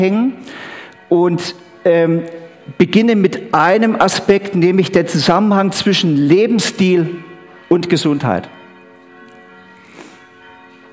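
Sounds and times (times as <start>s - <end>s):
speech: 0.0s - 8.6s
church bells pealing to mark the start of the second part of a sermon: 1.3s - 8.8s.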